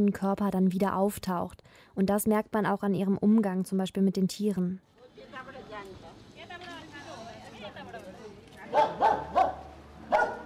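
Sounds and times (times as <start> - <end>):
speech: 0.0 - 6.1, 8.7 - 10.4
dog barking: 8.7 - 10.4.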